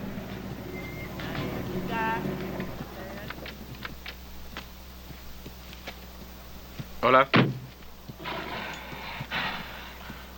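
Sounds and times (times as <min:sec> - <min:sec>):
horse hooves clopping on the ground: 0:00.0 - 0:10.3
speech: 0:07.0 - 0:07.5
horse snorting: 0:08.2 - 0:10.2.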